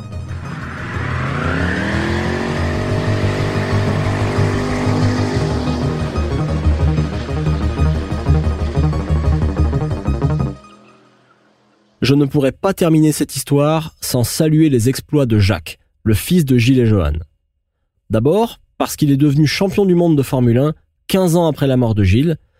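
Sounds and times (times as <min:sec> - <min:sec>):
Mustang V8 engine revving during a burnout: 0:00.0 - 0:12.0
Mustang tires spinning and squealing in a burnout: 0:00.2 - 0:08.5
speech: 0:12.0 - 0:17.3, 0:18.1 - 0:22.5.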